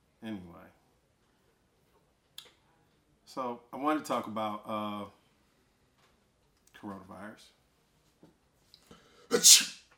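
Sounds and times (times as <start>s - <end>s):
speech: 3.4s - 5.2s, 6.8s - 7.6s, 9.3s - 9.8s
person sneezing: 9.3s - 9.9s.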